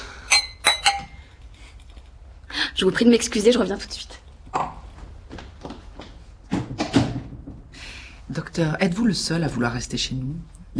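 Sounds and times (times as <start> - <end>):
glasses clinking in a toast: 0.1 - 1.3
speech: 2.8 - 4.2, 8.6 - 10.7.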